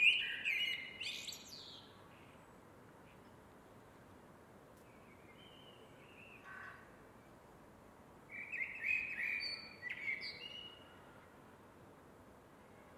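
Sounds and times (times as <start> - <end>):
Eurasian blackbird singing: 0.0 - 1.9, 8.3 - 10.8.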